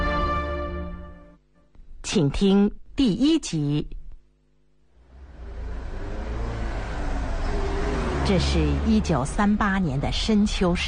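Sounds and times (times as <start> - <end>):
speech: 2.1 - 4.0, 8.3 - 10.8
trucks speeding along a mountain road: 5.0 - 10.3.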